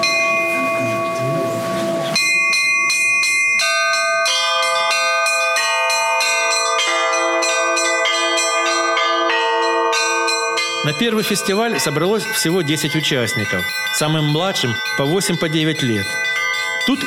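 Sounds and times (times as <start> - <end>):
church bells rung from a bell tower in Krasnodar Russia: 0.0 - 17.0
speech: 11.0 - 17.0.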